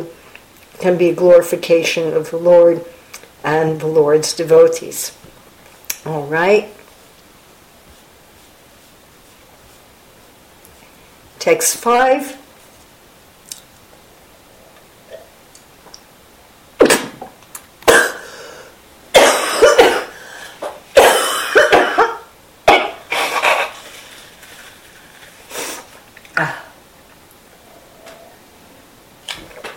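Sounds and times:
speech: 0.8s - 5.3s, 6.0s - 6.8s, 11.4s - 12.4s
person coughing: 17.9s - 18.4s, 19.2s - 20.2s, 21.0s - 23.8s, 26.4s - 26.7s.

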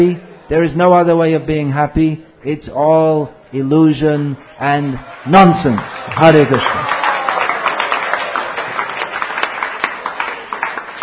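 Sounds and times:
speech: 0.0s - 6.9s
crowd cheering and clapping for a speaker: 4.4s - 11.0s.

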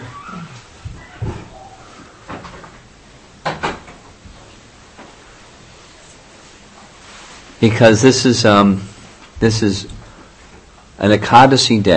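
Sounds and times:
door being shut: 0.0s - 1.6s, 3.4s - 4.0s
speech: 7.6s - 10.0s, 11.0s - 11.9s.

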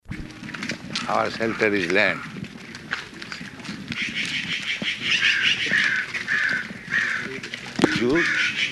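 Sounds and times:
faint outdoor background: 0.1s - 8.7s
speech: 1.1s - 2.3s, 8.0s - 8.5s
crow cawing in harsh raspy bursts: 1.4s - 2.4s, 4.0s - 8.7s.

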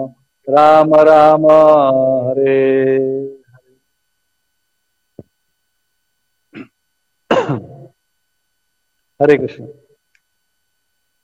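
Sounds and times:
speech: 0.0s - 3.3s, 9.2s - 9.8s
hoarse person coughing and clearing throat: 6.6s - 7.9s.

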